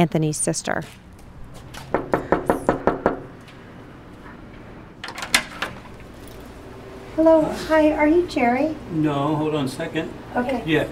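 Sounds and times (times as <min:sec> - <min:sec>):
speech: 0:00.0 - 0:01.0, 0:07.2 - 0:10.9
knocking on an apartment door: 0:01.9 - 0:03.3
latch clicks and thumps: 0:05.0 - 0:05.8.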